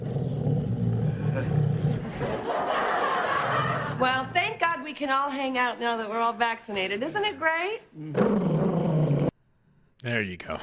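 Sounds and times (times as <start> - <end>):
dog growling and roaring: 0.0 - 2.5, 8.0 - 9.4
laughter: 2.1 - 4.3
speech: 4.0 - 8.5, 10.0 - 10.6.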